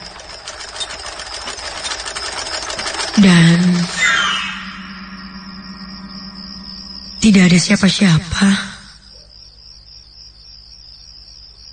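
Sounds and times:
sewing machine running: 0.0s - 4.1s
speech: 3.2s - 3.9s, 7.2s - 8.7s.

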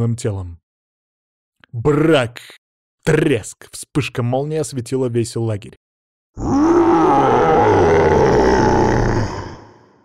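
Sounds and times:
speech: 0.0s - 0.6s, 1.7s - 5.8s, 6.4s - 8.3s
huge black-brown bear roaring in pain: 6.4s - 10.0s.

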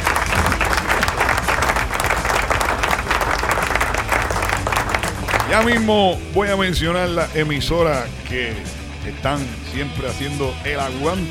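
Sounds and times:
crowd applause: 0.0s - 6.0s
speech: 5.5s - 11.3s.

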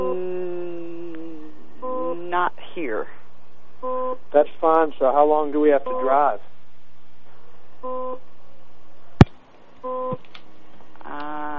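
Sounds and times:
electronic beeping: 1.8s - 2.2s, 3.8s - 4.2s, 5.8s - 6.3s, 7.8s - 8.2s, 9.8s - 10.2s
speech: 2.3s - 3.2s, 3.8s - 6.5s.

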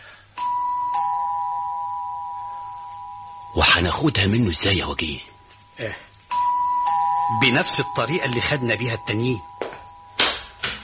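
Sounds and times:
doorbell ringing at an apartment door: 0.4s - 4.8s, 6.3s - 10.2s
speech: 3.6s - 6.1s, 7.3s - 9.6s.

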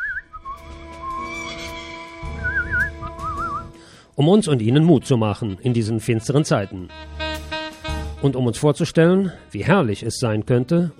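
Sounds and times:
person whistling a cheerful little tune: 0.0s - 1.3s, 2.3s - 3.8s
speech: 4.2s - 7.1s, 8.2s - 10.9s.

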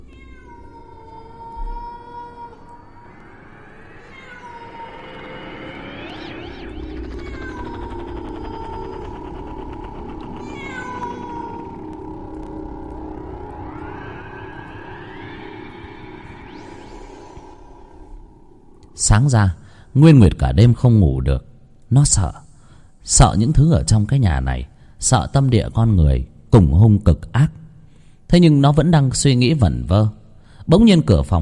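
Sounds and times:
cat wailing mournfully atop a courtyard wall at night: 0.0s - 18.0s
steady low hum: 0.0s - 20.7s
speech: 19.1s - 22.4s, 23.0s - 27.6s, 28.3s - 31.3s.

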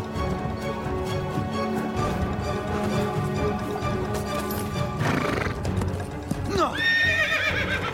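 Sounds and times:
horse hooves clip-clopping as riders set off: 0.0s - 7.9s
horse whinnying sharply: 5.0s - 5.7s, 6.5s - 7.9s.

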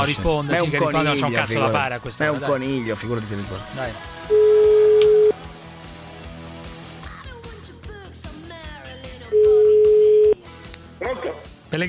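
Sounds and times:
speech: 0.0s - 4.4s, 11.2s - 11.8s
outgoing telephone call ringback tone: 4.3s - 5.4s, 9.3s - 10.4s.

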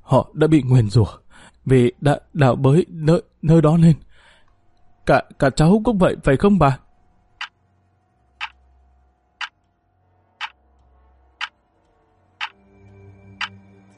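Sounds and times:
speech: 0.1s - 4.1s, 5.1s - 6.8s
low hum: 1.2s - 13.9s
clock ticking in a room: 7.4s - 7.6s, 8.4s - 8.6s, 9.4s - 9.6s, 13.4s - 13.6s.

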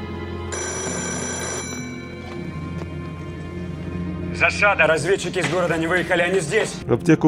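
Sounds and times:
telephone bell ringing: 0.5s - 2.2s
speech: 4.4s - 7.2s.

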